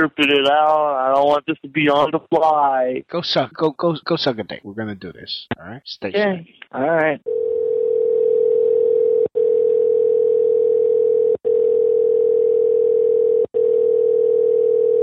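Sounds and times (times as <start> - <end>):
speech: 0.0 - 7.4
loud telephone ringing tone of an unanswered phone call: 7.3 - 15.0.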